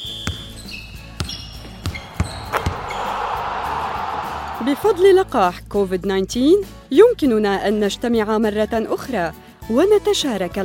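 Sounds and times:
basketball bouncing on a hard court during a game: 0:00.0 - 0:03.1
sneakers squeaking: 0:00.0 - 0:04.0
crowd noise: 0:01.8 - 0:05.2
speech: 0:04.6 - 0:10.6.

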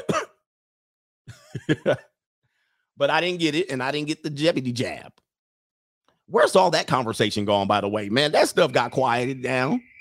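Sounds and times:
person coughing: 0:00.0 - 0:00.4
laughter: 0:01.3 - 0:02.1
speech: 0:01.5 - 0:02.1, 0:03.0 - 0:05.2, 0:06.3 - 0:09.9.

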